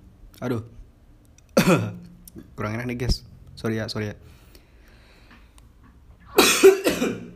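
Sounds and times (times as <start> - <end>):
speech: 0.4 - 0.8, 1.6 - 4.4
harsh raspy coughs: 1.6 - 2.0, 6.3 - 7.3.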